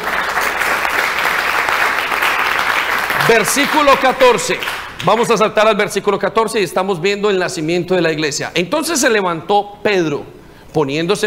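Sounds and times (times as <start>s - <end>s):
audience applauding: 0.0s - 5.3s
speech: 3.3s - 11.2s.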